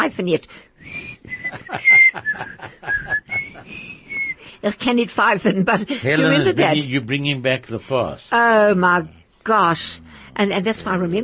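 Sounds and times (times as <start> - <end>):
speech: 0.0 - 11.2
person whistling a bouncy radio theme tune: 0.8 - 4.4
laughter: 1.2 - 4.2, 5.2 - 6.8.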